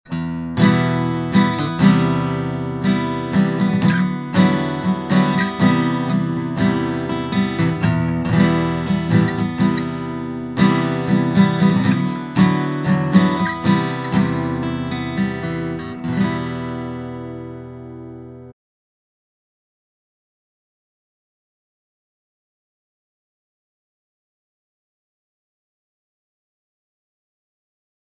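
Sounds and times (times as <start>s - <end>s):
steel-string acoustic guitar: 0.1s - 18.5s.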